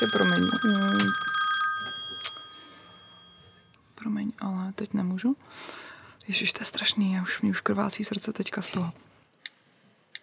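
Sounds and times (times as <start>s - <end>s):
speech: 0.0s - 1.3s, 4.4s - 9.1s
mobile phone ringing with a steady electronic ringtone: 0.0s - 3.7s.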